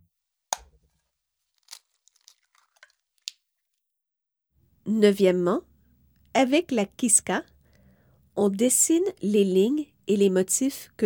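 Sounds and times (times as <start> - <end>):
paper towel crinkling while drying a dyed egg: 0.8 - 3.4
speech: 4.9 - 5.7, 6.4 - 7.5, 8.4 - 11.0.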